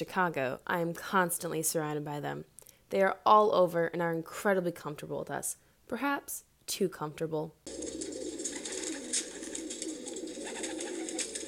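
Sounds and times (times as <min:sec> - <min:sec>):
speech: 0:00.0 - 0:08.0
flock of pigeons cooing: 0:07.7 - 0:11.4.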